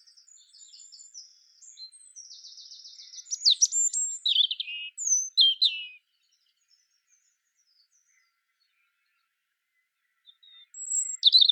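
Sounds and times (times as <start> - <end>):
European robin Erithacus rubecula singing: 0.0 - 11.5.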